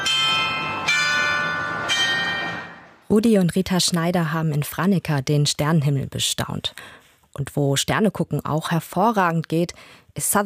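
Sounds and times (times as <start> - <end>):
mechanical town hall carillon playing a march: 0.0 - 3.0
speech: 3.1 - 10.4.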